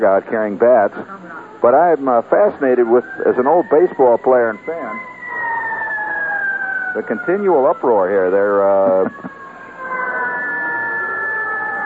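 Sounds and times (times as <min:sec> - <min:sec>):
speech: 0:00.0 - 0:05.1, 0:06.9 - 0:09.4
faint murmur: 0:00.0 - 0:11.8
siren wailing: 0:01.6 - 0:11.8.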